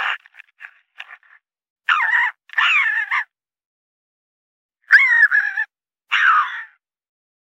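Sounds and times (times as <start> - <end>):
raccoon squealing calls: 1.9 - 3.3, 4.9 - 6.8.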